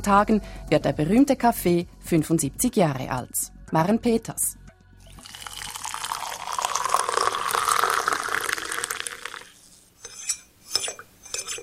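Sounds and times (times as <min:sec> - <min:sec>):
speech: 0:00.0 - 0:04.6
hot water pouring into a cup: 0:05.1 - 0:09.6.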